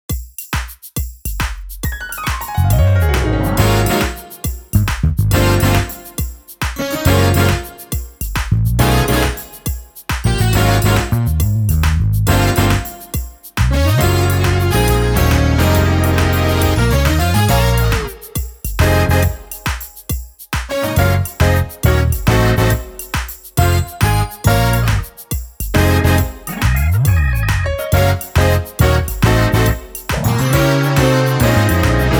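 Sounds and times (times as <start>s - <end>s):
music without drums: 0.0s - 32.1s.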